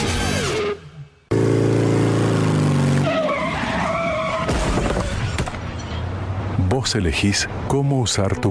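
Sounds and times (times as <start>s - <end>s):
screeching skidding: 0.2s - 6.3s
motorcycle engine revving: 1.3s - 5.3s
speech: 6.9s - 8.4s.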